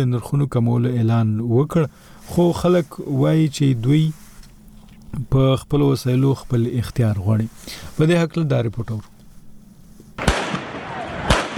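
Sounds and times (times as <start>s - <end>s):
speech: 0.0s - 4.2s, 5.1s - 9.1s
continuous rough noise: 0.0s - 10.3s
gunfire from security forces during street protests in Pakistan-administered Jammu and Kashmir: 10.2s - 11.5s.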